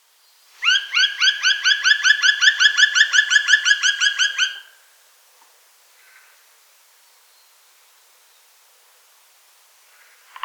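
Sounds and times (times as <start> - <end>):
black woodpecker calling: 0.6 - 4.7.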